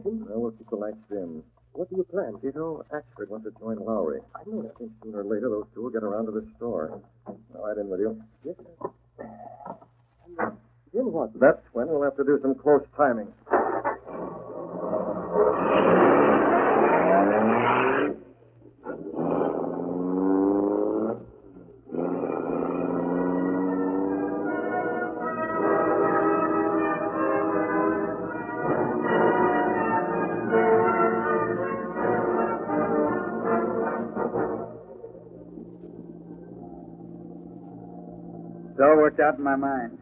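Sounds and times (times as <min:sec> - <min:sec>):
speech: 0:00.1 - 0:14.5, 0:39.3 - 0:40.0
truck engine revving and shifting while driven to a warehouse: 0:13.5 - 0:39.2.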